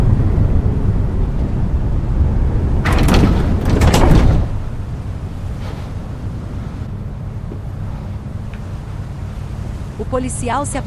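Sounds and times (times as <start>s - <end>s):
steady low rumble on a ferry deck: 0.0s - 10.8s
rear doors of vans unlatching and swinging open on a ferry deck: 2.8s - 5.7s
speech: 10.2s - 10.8s.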